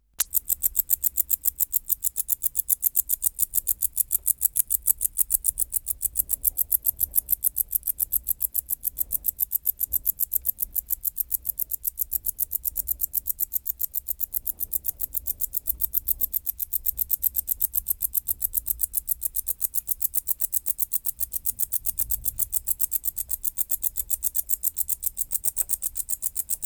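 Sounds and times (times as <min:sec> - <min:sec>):
Decticus verrucivorus wart-biter song: 0:00.2 - 0:26.6.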